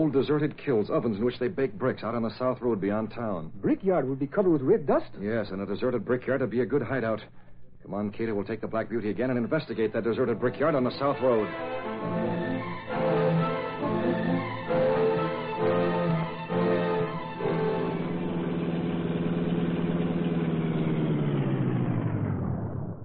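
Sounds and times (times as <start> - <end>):
speech: 0.0 - 12.2
car engine roaring while driving: 11.8 - 23.0.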